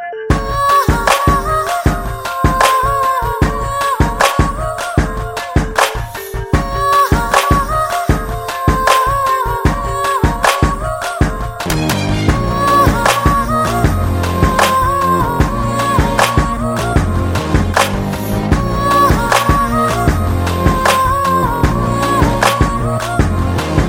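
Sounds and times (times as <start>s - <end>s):
woman singing a melody: 0.3s - 17.7s, 18.6s - 23.7s.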